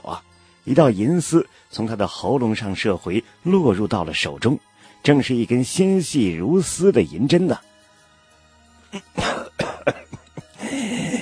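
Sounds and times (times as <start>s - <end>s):
speech: 0.0s - 7.7s, 8.9s - 10.0s
innkeeper coughing: 9.0s - 11.2s.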